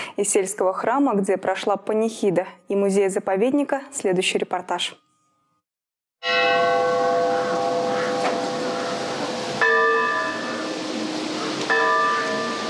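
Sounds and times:
speech: 0.2 - 5.1
church bell tolling: 6.2 - 12.6.

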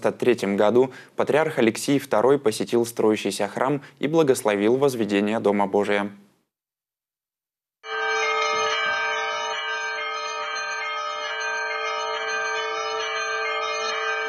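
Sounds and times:
speech: 0.0 - 6.2
church bells of a gold-domed church in Volgograd pealing on its patronal feast day: 7.8 - 14.2.

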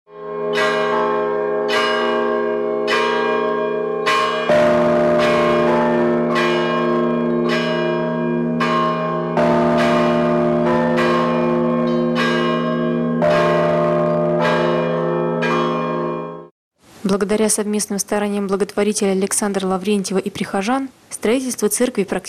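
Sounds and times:
church bells ringing in a lively peal: 0.1 - 16.5
speech: 17.2 - 22.2.

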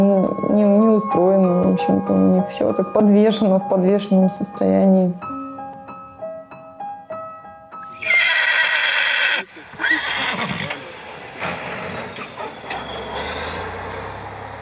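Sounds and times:
speech: 0.0 - 5.4
steady outdoor noise: 7.9 - 14.6
horse whinnying: 8.0 - 13.8.

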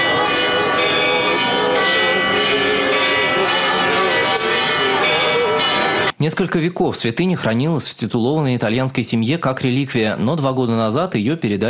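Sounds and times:
church bells pealing: 0.0 - 6.2
speech: 6.2 - 11.6.

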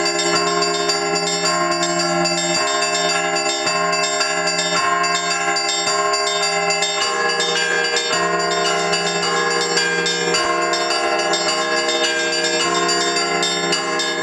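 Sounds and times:
several church bells ringing in a dense peal: 0.0 - 14.2.

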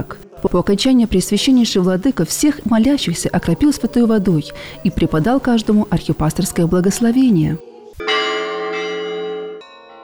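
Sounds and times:
speech: 0.0 - 8.1
church bells ringing for an Easter celebration: 8.0 - 10.0.

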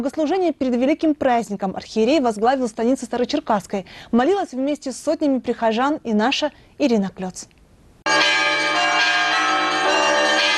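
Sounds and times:
speech: 0.0 - 8.2
church bells of a military cathedral ringing before liturgy: 8.1 - 10.5.

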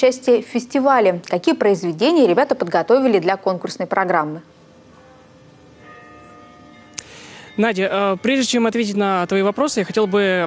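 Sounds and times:
speech: 0.0 - 4.6, 7.6 - 10.4
church bells ringing a peal: 4.8 - 10.4.

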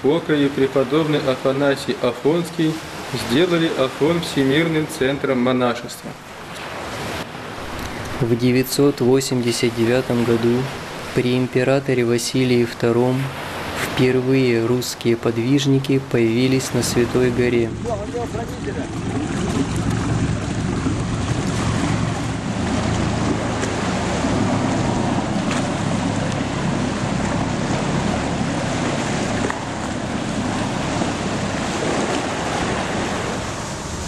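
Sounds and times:
speech: 0.0 - 6.3, 8.2 - 13.4, 14.0 - 19.4
rough Aegean Sea waves churning and crashing: 0.0 - 34.0
wind roaring across the microphone: 16.7 - 34.0.

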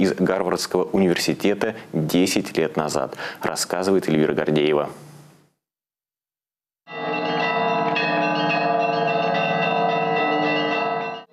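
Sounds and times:
speech: 0.0 - 5.1
monastery church bells being rung: 6.9 - 11.3.

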